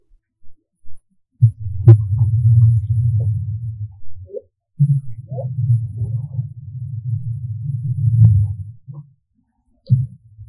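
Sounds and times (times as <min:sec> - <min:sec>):
humpback whale mother and calf murmuring grunting calls: 0:01.8 - 0:09.0.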